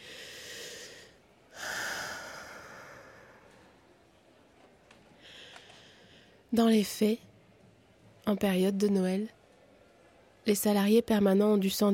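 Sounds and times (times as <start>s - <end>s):
deep breath: 0.0s - 3.7s, 5.2s - 6.4s
speech: 6.5s - 7.3s, 8.3s - 9.4s, 10.4s - 11.9s.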